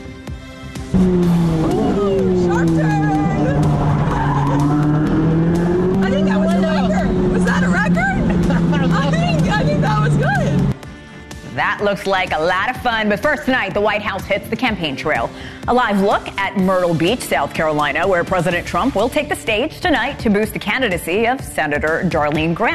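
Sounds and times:
race car engine roaring speeding through city streets: 0.8 - 10.8
speech: 0.9 - 1.6, 11.9 - 22.7.

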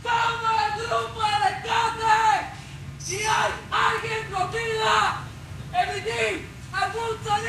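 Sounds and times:
low rumbling background: 0.0 - 7.4
rescue worker shouting into collapsed building rubble: 0.0 - 7.4.

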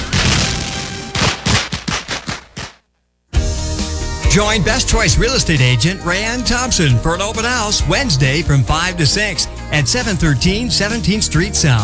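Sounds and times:
fireworks exploding with loud sharp bangs: 0.0 - 2.9
speech: 4.4 - 11.8.

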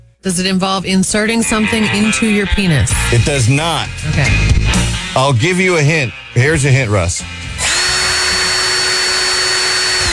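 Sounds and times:
speech: 0.2 - 7.4
screw gun power drill whirring: 7.4 - 10.1.

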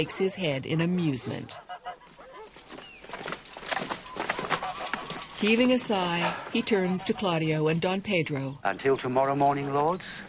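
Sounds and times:
speech: 0.0 - 1.7, 5.4 - 10.2
disturbed geese squawking: 1.0 - 2.4, 4.2 - 10.2
clip-clopping hoofbeats of cantering horses: 2.0 - 6.0.

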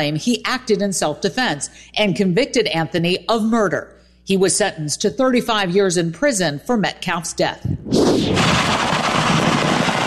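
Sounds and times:
speech: 0.0 - 8.9
fireworks rockets going off at a burning fireworks stand in Oklahoma: 8.0 - 10.0.

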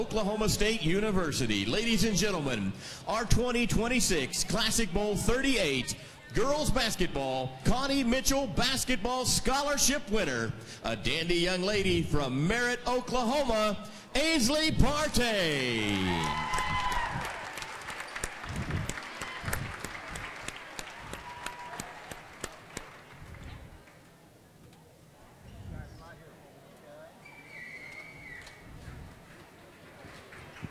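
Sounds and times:
speech: 0.0 - 16.5
crowd applauding: 15.7 - 24.0.

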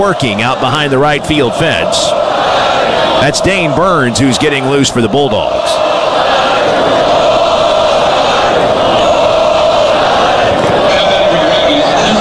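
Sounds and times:
speech: 0.0 - 2.2, 3.2 - 5.8
large baseball stadium crowd roaring and yelling: 0.0 - 12.2.

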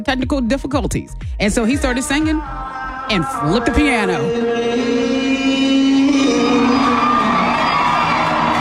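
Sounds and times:
speech: 0.0 - 5.6
large concert crowd roaring and cheering with whoops and shouts: 1.8 - 8.6.

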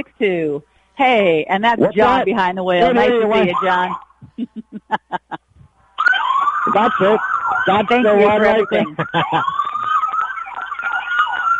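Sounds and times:
speech: 0.0 - 5.3, 6.7 - 9.6
laughter: 2.8 - 3.6, 4.2 - 5.6, 6.7 - 10.0
ambulance siren wailing in a back-to-school themed parade: 2.8 - 4.1, 6.0 - 11.5.

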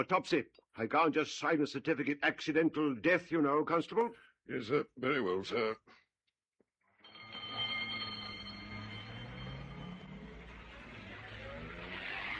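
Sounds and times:
speech: 0.0 - 6.0
steady whine: 7.1 - 12.3
ambulance and car engine rumble: 7.8 - 12.3.

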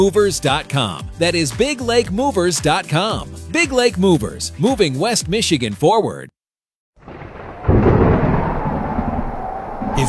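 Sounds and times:
speech: 0.0 - 6.4
thunder from a spring storm rumbling: 7.0 - 10.0.

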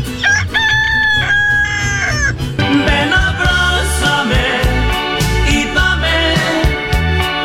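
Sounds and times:
dense rhythmic band music with heavy bass: 0.0 - 7.4
rooster crow sound effect on a morning radio program: 0.2 - 5.2.

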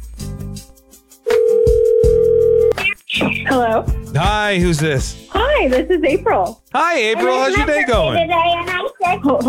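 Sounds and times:
telephone dial tone and ringing: 1.3 - 2.7
speech: 3.6 - 9.4.

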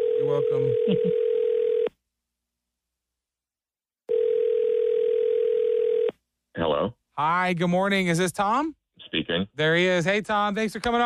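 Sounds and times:
telephone dial tone while placing a call: 0.0 - 1.9, 4.1 - 6.1
speech: 0.4 - 1.4, 6.8 - 11.0.

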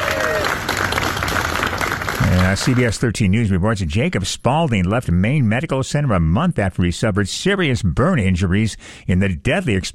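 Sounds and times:
applause for an injured firefighter leaving hospital: 0.0 - 3.0
speech: 2.5 - 9.9.

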